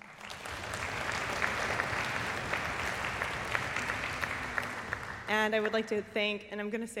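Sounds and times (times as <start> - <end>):
audience applause: 0.0 - 5.9
speech: 5.3 - 6.9.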